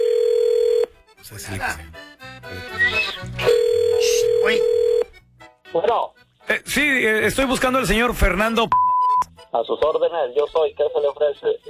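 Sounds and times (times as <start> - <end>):
steady electronic telephone ringback tone: 0.0 - 0.9, 3.4 - 5.1
speech: 1.3 - 3.4, 5.8 - 8.8, 9.5 - 11.6.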